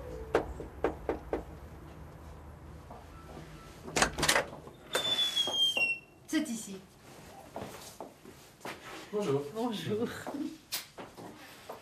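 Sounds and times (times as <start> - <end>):
sharp knocks or clicks: 0.3 - 1.5
front door of a country house in Walloon Brabant swinging open: 3.9 - 6.1
speech: 9.2 - 10.5.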